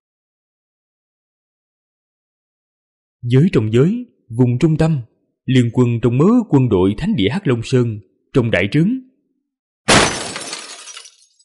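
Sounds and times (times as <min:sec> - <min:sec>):
speech: 0:03.2 - 0:09.1
china fragments scattering: 0:09.9 - 0:11.4
china teacup thrown to the ground shattering: 0:09.9 - 0:11.4.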